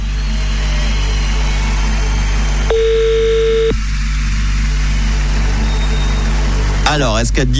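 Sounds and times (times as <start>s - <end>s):
low rumbling hum: 0.0s - 6.9s
telephone ringback tone from an outgoing call: 2.7s - 3.8s
speech: 6.9s - 7.5s.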